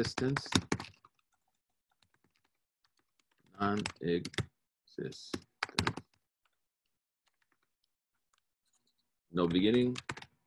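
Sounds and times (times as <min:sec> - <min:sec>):
speech: 0:00.0 - 0:00.7, 0:03.6 - 0:05.9, 0:09.3 - 0:10.3
typing on a computer keyboard: 0:00.0 - 0:04.5, 0:05.3 - 0:06.2, 0:09.4 - 0:10.3.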